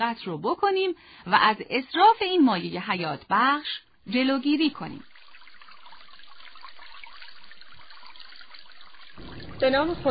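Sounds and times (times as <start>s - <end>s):
speech: 0.0s - 5.1s, 9.6s - 10.0s
steady stream of water running from a tap: 4.1s - 10.0s.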